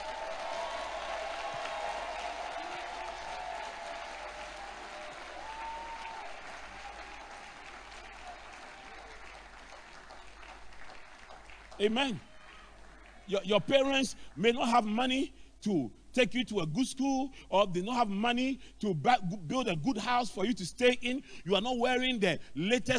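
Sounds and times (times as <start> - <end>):
faint cheering voices: 0.0 - 9.4
large crowd clapping and applauding: 0.0 - 13.4
speech: 11.8 - 12.3, 13.3 - 22.9.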